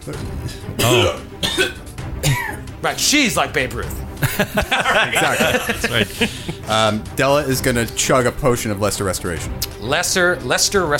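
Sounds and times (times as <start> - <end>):
speech: 0.0 - 1.9, 2.8 - 10.9
voice imitating a hacking cough: 0.8 - 2.6
laughter: 4.2 - 7.0.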